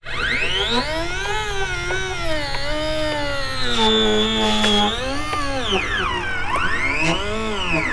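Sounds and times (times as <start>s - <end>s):
robotic servo motors whirring: 0.0s - 7.9s.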